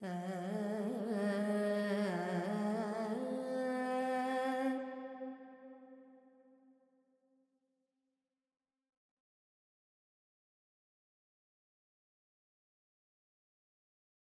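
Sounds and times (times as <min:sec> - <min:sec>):
female Carnatic alap singing with reverb: 0:00.0 - 0:05.4.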